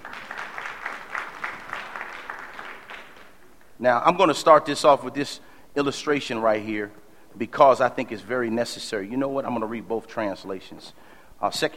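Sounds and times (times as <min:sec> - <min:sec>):
audience hand clapping: 0:00.0 - 0:03.8
speech: 0:03.8 - 0:11.7.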